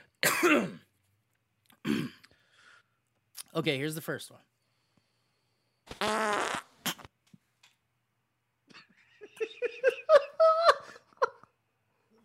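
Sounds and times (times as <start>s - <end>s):
speech: 0.4s - 0.8s, 3.6s - 4.5s
loud buzzy fart: 5.9s - 7.1s
stifled giggles and snickering laughter: 8.7s - 11.5s.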